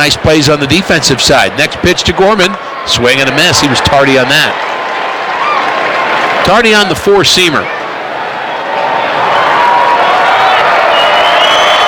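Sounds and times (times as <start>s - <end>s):
speech: 0.0s - 4.7s, 6.5s - 7.8s
large baseball stadium crowd cheering: 0.0s - 11.8s
whistles from the baseball stadium crowd: 10.4s - 11.8s.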